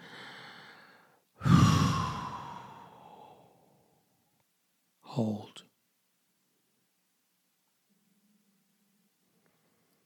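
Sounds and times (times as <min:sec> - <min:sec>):
deep breath in during a guided breathing exercise: 0:00.0 - 0:03.8
speech: 0:05.2 - 0:05.7.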